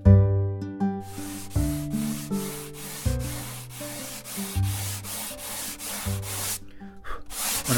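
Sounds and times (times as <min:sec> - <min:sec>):
sustained tonal music: 0:00.0 - 0:07.7
sandpaper rubbing across wood while making a guitar: 0:01.0 - 0:06.6, 0:07.2 - 0:07.7.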